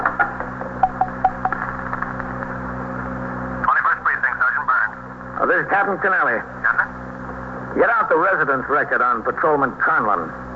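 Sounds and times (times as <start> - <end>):
steady low electrical hum: 0.0 - 10.5
telephone dialed by a police captain, short tone beeps: 0.8 - 1.6
speech: 5.6 - 6.7, 7.8 - 10.4.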